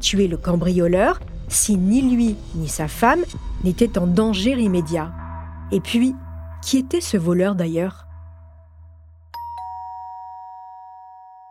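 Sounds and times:
speech: 0.0s - 8.0s
two-tone doorbell chime: 9.4s - 11.5s.

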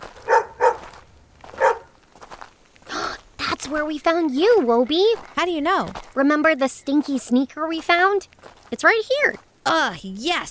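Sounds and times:
dog barking: 0.2s - 0.9s, 1.5s - 1.9s
speech: 3.7s - 10.4s.

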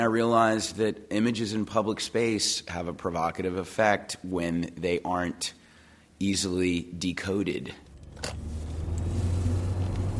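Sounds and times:
speech: 0.0s - 5.6s, 6.2s - 8.5s
car driving through city streets of Boston: 7.8s - 10.1s.

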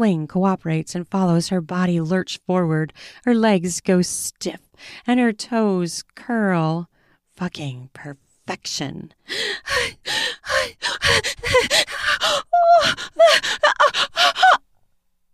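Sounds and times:
speech: 0.0s - 14.6s
woman gasping for air: 9.2s - 14.6s.

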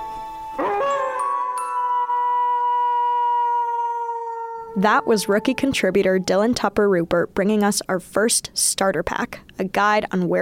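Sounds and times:
wolf howling: 0.6s - 6.6s
speech: 4.8s - 10.4s.

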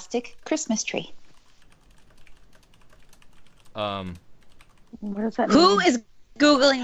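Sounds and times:
fingers typing on a computer keyboard: 0.0s - 5.0s
speech: 0.1s - 1.2s, 3.8s - 4.3s, 4.9s - 6.8s
person making a voiced sound: 3.8s - 4.2s, 5.4s - 5.9s.

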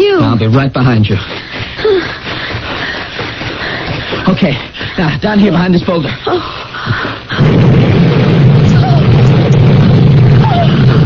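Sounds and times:
speech: 0.4s - 1.9s, 4.3s - 7.6s
gas tank explosion: 7.4s - 11.0s
low rumbling roar after gas tank explosion: 7.4s - 11.0s.

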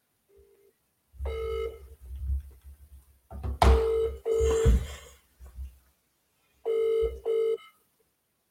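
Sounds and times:
outgoing phone call ringback tone: 1.3s - 1.8s, 3.8s - 4.8s, 6.7s - 7.8s.

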